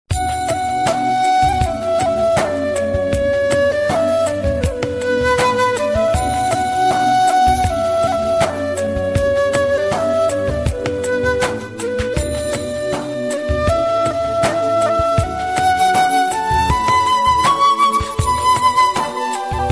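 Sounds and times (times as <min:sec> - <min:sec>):
flute song ringtone: 0:00.1 - 0:19.7.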